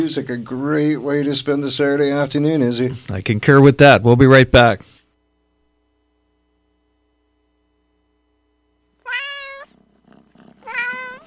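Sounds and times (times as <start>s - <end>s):
speech: 0.0s - 5.0s
cat meowing: 9.0s - 9.8s, 10.6s - 11.2s.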